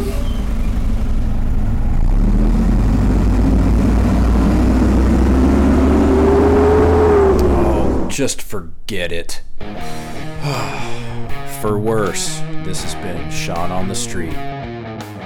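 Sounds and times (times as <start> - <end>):
dump truck passing on the street: 0.0 - 14.5
speech: 8.2 - 11.0, 11.6 - 14.6.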